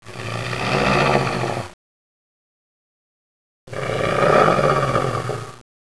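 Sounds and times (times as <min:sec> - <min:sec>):
person snoring: 0:00.0 - 0:01.8, 0:03.7 - 0:05.6.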